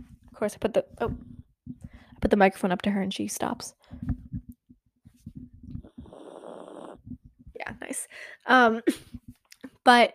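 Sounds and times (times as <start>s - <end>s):
speech: 0.4s - 1.3s, 2.2s - 4.2s, 7.9s - 9.1s, 9.8s - 10.1s
dog snoring: 5.7s - 7.3s.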